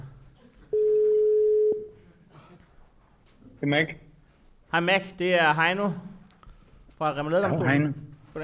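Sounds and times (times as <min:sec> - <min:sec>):
phone ringing tone beep: 0:00.7 - 0:01.9
speech: 0:03.6 - 0:04.1, 0:04.7 - 0:06.1, 0:07.0 - 0:08.4.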